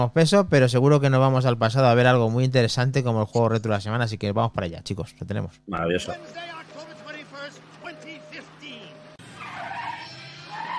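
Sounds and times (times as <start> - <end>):
speech: 0.0 - 6.9
steady car engine hum: 6.0 - 10.7
car tires squealing: 6.1 - 10.7.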